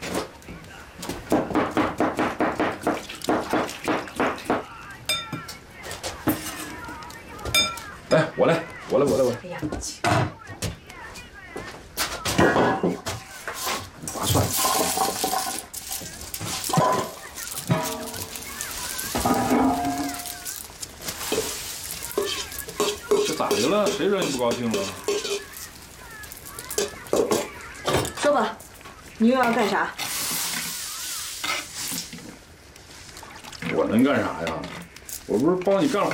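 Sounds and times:
stirring and utensils clinking in a home kitchen: 0.0 - 8.3, 12.4 - 36.1
food sizzling and frying in a home kitchen: 0.0 - 36.1
running water in a home kitchen: 2.4 - 4.7, 14.0 - 28.5, 29.2 - 36.1
speech: 8.4 - 10.3, 29.2 - 30.0, 34.0 - 36.1.

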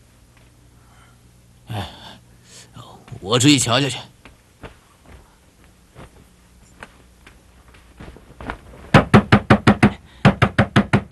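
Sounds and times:
speech: 1.8 - 2.0, 3.2 - 4.1
rapid loud knocking on a door late at night: 8.9 - 11.1.

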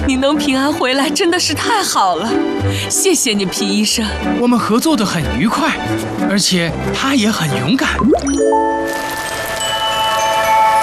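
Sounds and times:
speech: 0.1 - 9.2
sustained musical tones: 8.0 - 9.6
rain falling in a desert: 8.4 - 10.2.

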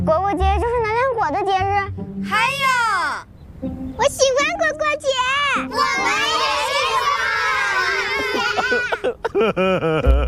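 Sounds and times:
speech: 0.0 - 0.7, 3.6 - 7.2, 9.4 - 10.2
faint noise: 0.0 - 10.2
laughter: 7.5 - 10.2
person crying: 8.2 - 10.2.

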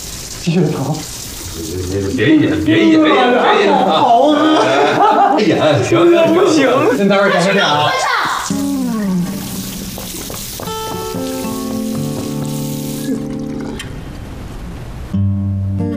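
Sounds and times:
speech: 0.4 - 8.6
laughter: 1.6 - 9.6
tap water splashing into a sink during hand washing: 9.6 - 13.9.

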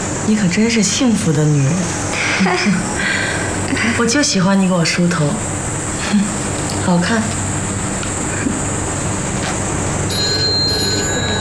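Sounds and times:
noisy hum: 0.0 - 11.3
speech: 0.3 - 7.4
telephone ringing: 10.1 - 11.3.

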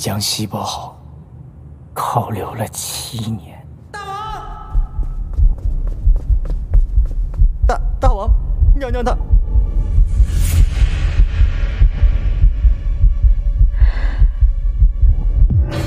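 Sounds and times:
speech: 0.0 - 1.0, 2.0 - 3.5, 8.8 - 9.3
fast pounding heartbeat: 4.7 - 15.7.

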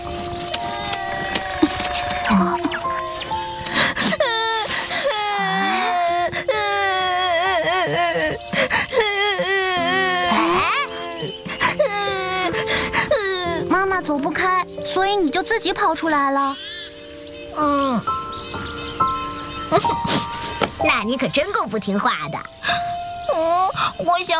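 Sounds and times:
steady drone of music: 0.0 - 24.3
child wailing and sobbing: 0.6 - 14.0, 17.6 - 18.1, 22.6 - 24.3
speech: 2.3 - 2.6, 15.1 - 16.7, 17.6 - 18.1, 20.8 - 22.5, 24.0 - 24.3.

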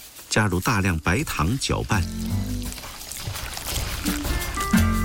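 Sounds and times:
speech: 0.4 - 2.5
high-proof baijiu liquor pouring onto diced pork fat: 1.9 - 4.9.

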